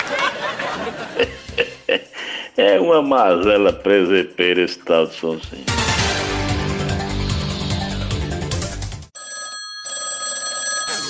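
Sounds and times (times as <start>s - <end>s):
laughter: 0.0s - 2.2s
loud busy music: 0.0s - 9.2s
speech: 2.7s - 5.8s
telephone ringing with a bright electronic trill: 9.1s - 11.0s.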